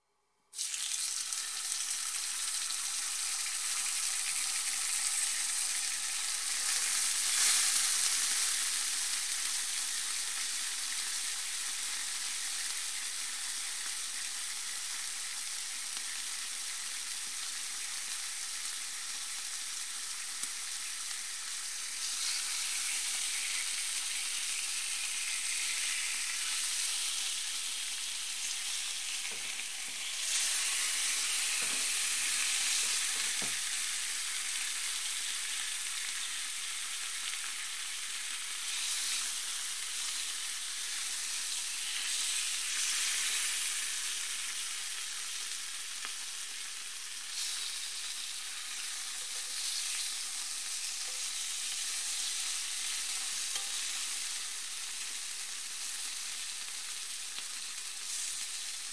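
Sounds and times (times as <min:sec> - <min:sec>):
bacon frying: 0:00.5 - 0:58.9.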